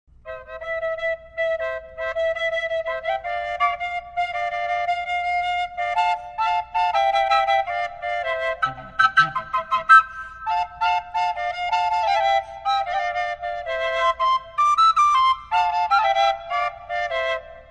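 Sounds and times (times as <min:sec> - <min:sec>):
double flute playing C: 0:00.2 - 0:17.6.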